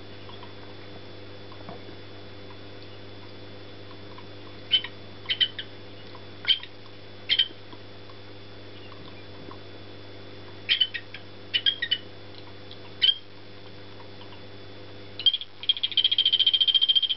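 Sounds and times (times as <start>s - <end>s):
male Golfodulcean poison frog calling: 4.1s - 7.6s, 10.6s - 12.2s, 12.8s - 13.3s, 14.0s - 14.5s, 15.2s - 17.1s.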